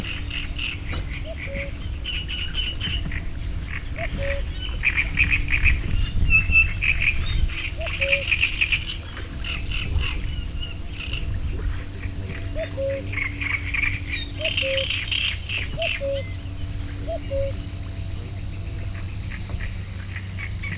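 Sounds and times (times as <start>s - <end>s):
cuckoo calling in nature: 0.0s - 5.5s, 7.6s - 8.9s, 12.3s - 18.1s
Eurasian reed warbler singing in nature: 0.0s - 20.7s.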